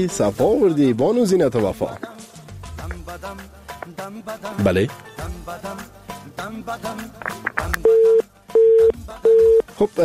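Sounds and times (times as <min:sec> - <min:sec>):
speech: 0:00.0 - 0:02.1, 0:03.2 - 0:08.2, 0:08.8 - 0:10.0
telephone busy tone after a phone-in call disconnects: 0:07.8 - 0:09.6.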